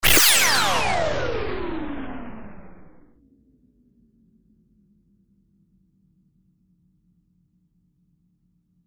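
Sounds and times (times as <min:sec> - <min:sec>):
high musical stab: 0:00.0 - 0:03.0.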